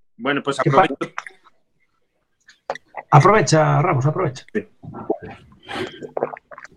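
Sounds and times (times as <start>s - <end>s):
speech: 0.2s - 1.1s, 3.1s - 6.4s
person sipping and swallowing water: 2.5s - 3.1s, 4.6s - 6.7s.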